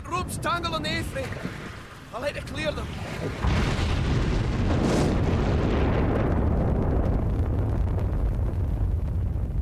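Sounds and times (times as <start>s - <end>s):
speech: 0.2s - 3.9s
gas riser explosion from rupture of pressurized gas export pipeline: 3.4s - 9.5s.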